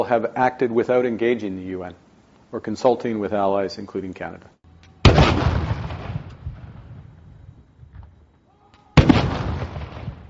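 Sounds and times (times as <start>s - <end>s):
speech: 0.0s - 4.6s
cannon blasts of a ceremonial gun salute at Parliament House: 5.0s - 7.3s, 9.0s - 10.2s.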